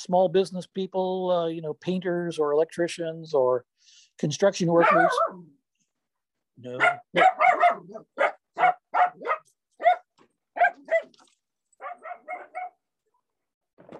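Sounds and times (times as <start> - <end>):
speech: 0.0 - 5.6, 6.6 - 8.3
dachshunds barking: 4.7 - 5.5, 6.7 - 11.2, 11.8 - 12.8.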